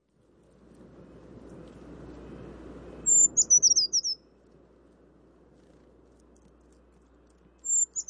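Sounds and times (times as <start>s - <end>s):
faint rushing background: 0.0s - 8.0s
brown creeper calls: 3.0s - 4.2s, 7.5s - 8.0s.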